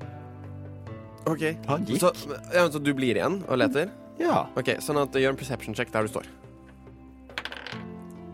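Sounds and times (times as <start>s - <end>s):
speech: 0.9s - 6.4s
twenty-sided die clattering across a tabletop: 7.3s - 7.9s.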